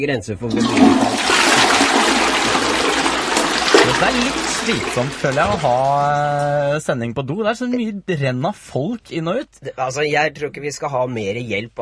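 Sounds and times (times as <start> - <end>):
speech: 0.0 - 1.4, 3.9 - 11.8
shower water running in a toilet room: 0.6 - 6.4.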